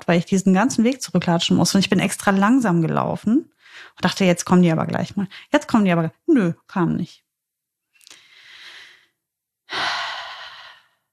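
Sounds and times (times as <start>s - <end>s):
speech: 0.0s - 7.2s
deep audible breathing with long inhale and breathy exhale: 8.0s - 11.1s.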